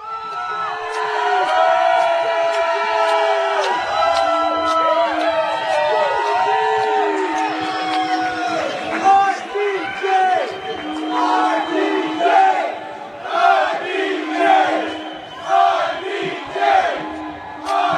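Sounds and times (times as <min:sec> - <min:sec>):
large live audience screaming and shouting: 0:00.0 - 0:17.9.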